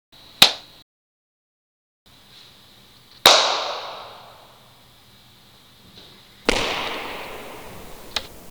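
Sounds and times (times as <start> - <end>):
three different claps: 6.5 - 8.4.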